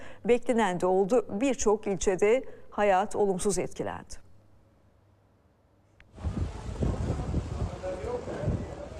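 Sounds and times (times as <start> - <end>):
speech: 0.2 - 4.2
strong storm wind during a severe windstorm in Istanbul: 6.1 - 8.9.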